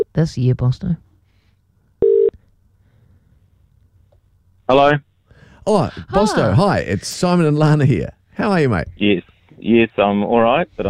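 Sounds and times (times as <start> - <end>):
speech: 0.2 - 1.1, 4.7 - 10.8
telephone tone as a call is dialed and rings: 2.0 - 2.3.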